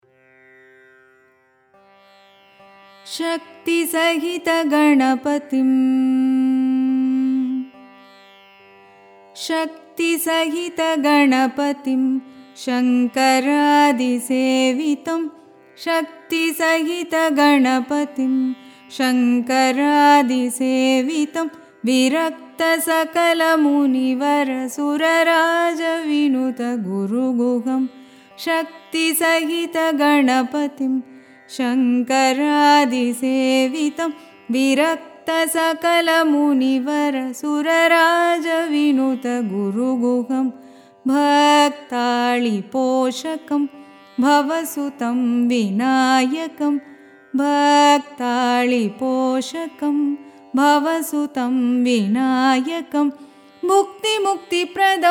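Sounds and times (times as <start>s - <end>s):
carnatic music song in adi tala tisra nadai: 0.0s - 55.0s.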